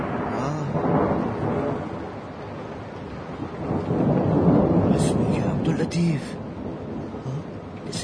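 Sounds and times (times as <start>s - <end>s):
heavy rain: 0.0s - 8.0s
low thunder rumbling: 0.0s - 8.0s
speech: 5.9s - 6.5s.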